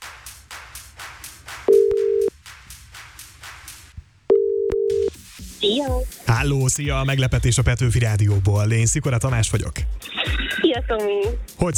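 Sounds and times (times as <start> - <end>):
rhythmic pulsing music: 0.0 - 4.0, 5.0 - 11.7
ringback tone of an outgoing phone call: 1.7 - 2.3, 4.3 - 5.1
speech: 5.6 - 11.7.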